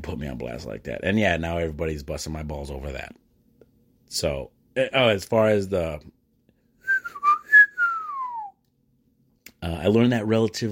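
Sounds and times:
speech: 0.0s - 3.2s, 4.1s - 6.2s, 9.6s - 10.7s
person whistling a short clear tune: 6.8s - 8.6s.

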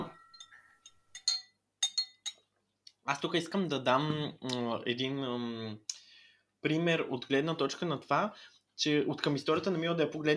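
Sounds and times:
glasses clinking in a toast: 0.0s - 2.5s
speech: 3.1s - 6.0s, 6.6s - 10.3s.

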